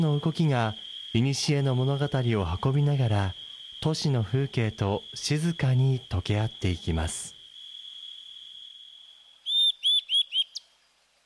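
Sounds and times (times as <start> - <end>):
speech: 0.0 - 7.4
bird chick chirping on a tree branch: 9.4 - 10.7.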